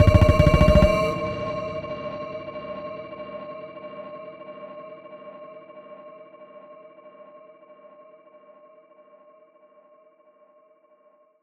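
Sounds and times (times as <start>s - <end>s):
voice tweak psytrance loop in D sharp: 0.0s - 1.1s.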